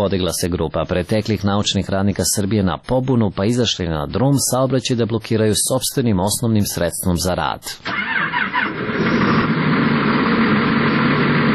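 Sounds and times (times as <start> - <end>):
speech: 0.0 - 9.2
red tractor engine idling in Serbia: 7.9 - 11.5.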